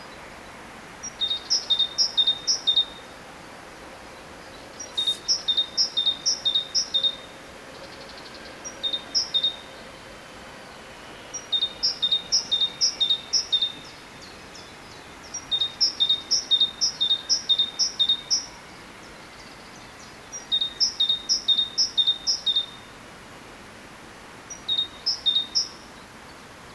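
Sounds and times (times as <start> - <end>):
background hiss: 0.0 - 26.7
Parus major great tit song: 4.8 - 6.9.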